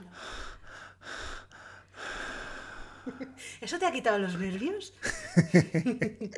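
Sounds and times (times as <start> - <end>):
person performing exaggerated heavy breathing and gasps: 0.0 - 3.6
speech: 3.1 - 6.3
laughter: 5.0 - 6.3.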